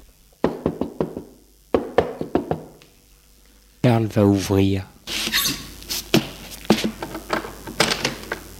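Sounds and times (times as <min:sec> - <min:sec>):
grandfather knocking on a door: 0:00.4 - 0:02.7
speech: 0:03.8 - 0:05.2.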